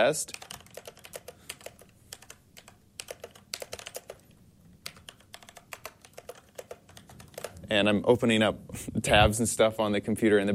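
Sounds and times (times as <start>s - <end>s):
speech: 0.0s - 0.5s, 7.7s - 10.5s
typing on a brown-switch mechanical keyboard: 0.3s - 4.2s, 4.8s - 7.6s.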